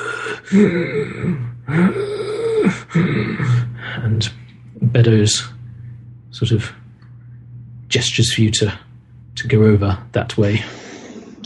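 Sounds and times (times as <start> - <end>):
voice imitating a man wheezing in a horror game: 0.0 - 4.1
speech: 0.4 - 5.6, 6.3 - 6.8, 7.9 - 10.8.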